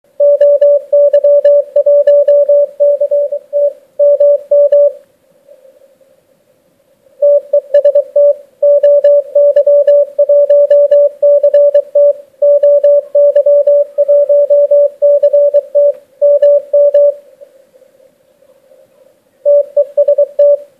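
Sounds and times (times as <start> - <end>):
CW morse code signal received for decoding: 0.2 - 5.0, 7.2 - 17.2, 19.5 - 20.7.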